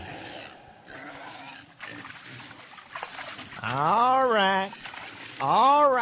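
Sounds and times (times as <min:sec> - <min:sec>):
pig squealing: 0:00.0 - 0:02.1
pigs grunting and snorting while being fed: 0:00.0 - 0:06.0
speech: 0:03.6 - 0:04.4.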